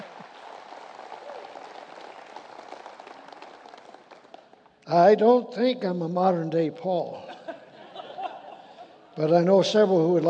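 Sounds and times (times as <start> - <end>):
crowd applause of many hands clapping: 0.0 - 4.8
speech: 4.9 - 7.4, 9.2 - 10.2
laughter: 7.1 - 9.5.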